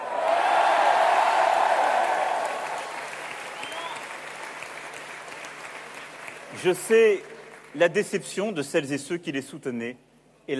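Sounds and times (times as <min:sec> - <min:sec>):
large audience applauding election candidates: 0:00.0 - 0:08.0
speech: 0:06.6 - 0:10.5.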